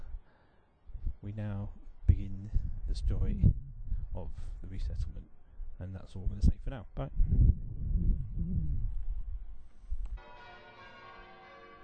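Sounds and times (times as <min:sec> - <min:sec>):
speech: 0:01.2 - 0:08.8
church bells ringing: 0:10.2 - 0:11.8.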